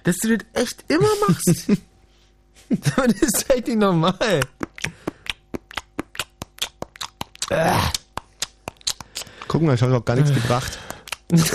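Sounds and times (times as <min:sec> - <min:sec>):
speech: 0:00.0 - 0:01.9, 0:02.6 - 0:04.9, 0:07.5 - 0:08.0, 0:09.5 - 0:11.5
chewing gum with rhythmic smacking chews: 0:04.4 - 0:09.6, 0:10.5 - 0:11.5
laughter: 0:11.3 - 0:11.5.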